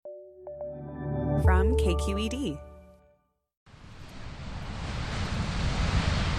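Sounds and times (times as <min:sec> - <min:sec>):
speech: 0:01.4 - 0:02.7
Pacific Ocean surf roaring: 0:03.7 - 0:06.3
gusting wind from a cold front at the Pacific shore: 0:03.7 - 0:06.3.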